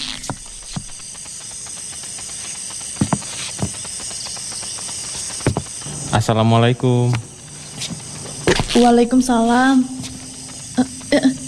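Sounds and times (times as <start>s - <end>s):
insects chirping: 0.0s - 11.4s
soft irregular footsteps on a hard floor: 3.0s - 4.2s, 5.1s - 6.2s, 7.0s - 11.4s
speech: 6.3s - 7.3s, 8.8s - 10.0s, 10.8s - 11.4s.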